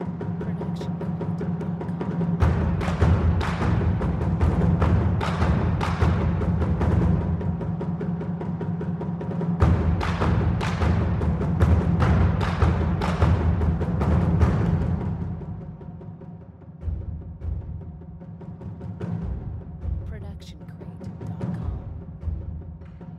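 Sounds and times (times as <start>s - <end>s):
Japanese taiko drums: 0.0s - 23.1s.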